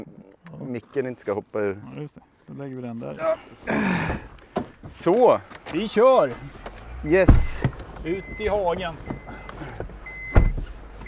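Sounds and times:
speech: 0.7 - 4.3, 4.9 - 9.8
car engine rumble heard from inside: 4.0 - 11.0.

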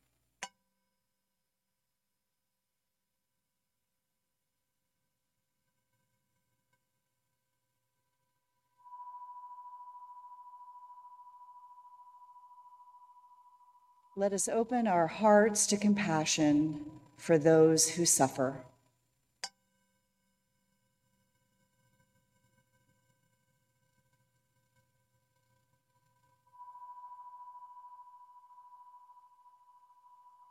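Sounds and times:
meditation chime ringing with a pure steady tone: 8.8 - 14.2, 26.6 - 30.4
speech: 14.2 - 18.7.

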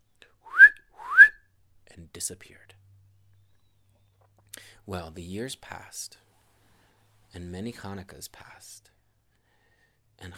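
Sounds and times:
short rising whistles: 0.5 - 1.4
speech: 2.0 - 2.8, 4.8 - 6.2, 7.3 - 8.9.

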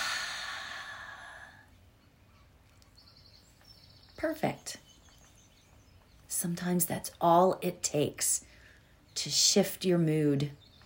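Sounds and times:
deep slow breath: 0.0 - 1.7
speech: 4.2 - 4.8, 6.4 - 8.5, 9.2 - 10.6.

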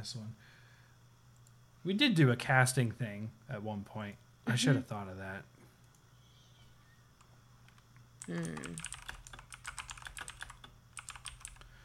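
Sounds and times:
speech: 0.0 - 0.6, 1.8 - 5.5, 8.3 - 9.0
low steady hum: 0.0 - 11.8
rapid typing on a computer keyboard: 7.7 - 11.7.

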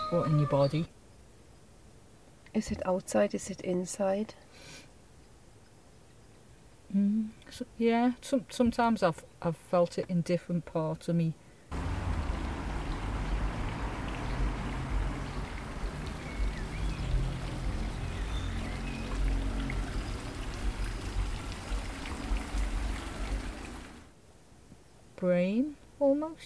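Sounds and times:
speech: 0.1 - 1.0, 2.5 - 4.9, 6.9 - 11.9, 25.2 - 26.4
steady rain on the metal bodywork of a car: 11.7 - 24.1.

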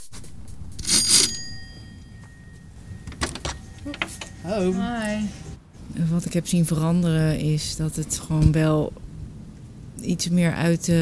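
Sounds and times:
doorbell ringing at a house door: 0.8 - 5.4
speech: 4.4 - 5.4, 6.0 - 9.0, 10.0 - 11.0.

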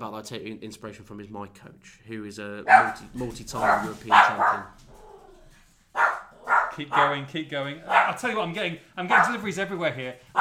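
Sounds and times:
speech: 0.0 - 4.9, 6.8 - 10.4
dog barking: 2.7 - 8.4, 9.1 - 9.5.

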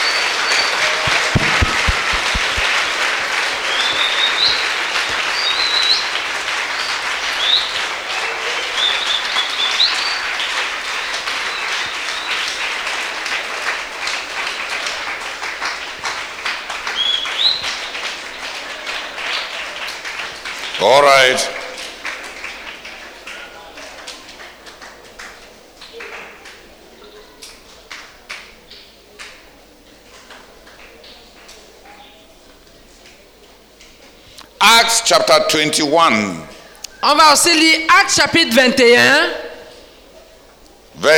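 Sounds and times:
audience applauding: 0.0 - 26.8
speech: 35.4 - 39.4.

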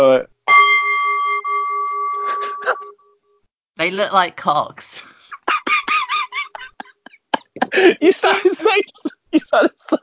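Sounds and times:
speech: 0.0 - 0.3, 3.9 - 5.1, 7.9 - 10.0
single bell strike ringing: 0.5 - 3.0
laughter: 2.2 - 2.8, 5.3 - 10.0.

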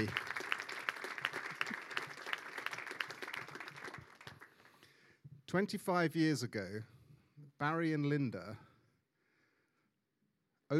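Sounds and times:
speech: 0.0 - 0.2, 5.5 - 7.0, 7.6 - 8.7
audience applauding: 0.0 - 4.8.

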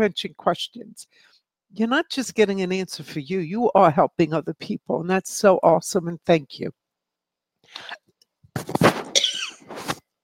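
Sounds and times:
speech: 0.0 - 6.8, 7.7 - 8.0, 8.6 - 9.0
person coughing into microphone: 9.0 - 9.7.

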